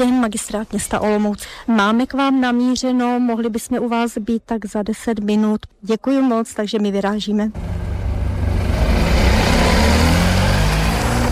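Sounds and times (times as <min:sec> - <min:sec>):
speech: 0:00.0 - 0:07.8
car engine rumbling as car drives slowly up to loading ramp: 0:07.6 - 0:11.3.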